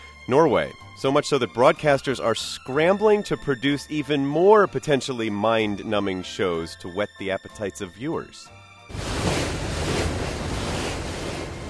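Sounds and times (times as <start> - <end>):
speech: 0.3 - 9.0
ferry sailing along Norway's coastline, rush of wind and water: 8.9 - 11.6.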